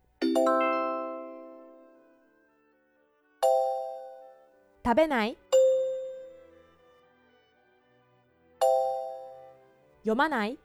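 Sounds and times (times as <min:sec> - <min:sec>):
two-tone chime: 0:00.2 - 0:02.1, 0:03.4 - 0:04.4, 0:05.6 - 0:06.4, 0:08.6 - 0:09.6
speech: 0:00.4 - 0:00.6, 0:04.9 - 0:05.5, 0:10.0 - 0:10.6.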